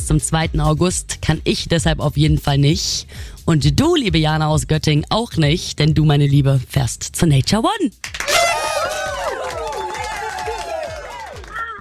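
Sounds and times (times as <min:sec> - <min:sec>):
speech: 0:00.1 - 0:08.2
crowd cheering with voices whooping and shouting: 0:08.2 - 0:11.7.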